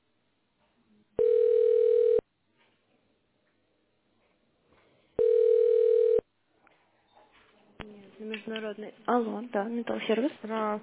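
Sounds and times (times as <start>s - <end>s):
telephone line beeps during a call transfer: 1.2s - 2.2s, 5.2s - 6.2s
speech: 8.5s - 10.8s.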